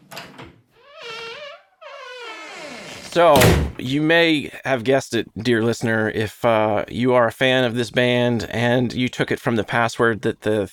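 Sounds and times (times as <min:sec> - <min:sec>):
door creaking open: 0:00.0 - 0:03.8
speech: 0:03.1 - 0:10.7.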